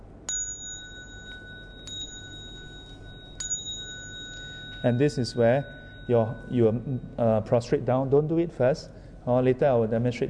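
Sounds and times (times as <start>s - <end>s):
low hum: 0.0s - 10.2s
bright bell strikes rung during a ceremony as cue to prostrate: 0.3s - 7.6s
speech: 4.8s - 10.2s.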